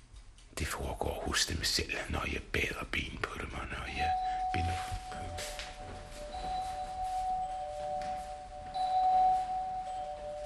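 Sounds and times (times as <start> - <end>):
faint hum: 0.0 - 10.4
speech: 0.6 - 5.6
bell ringing before choir begins: 4.1 - 10.4.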